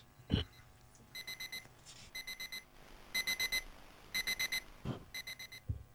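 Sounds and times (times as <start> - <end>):
rustling: 0.8 - 5.2
alarm clock beeping in high electronic tones: 1.2 - 5.7.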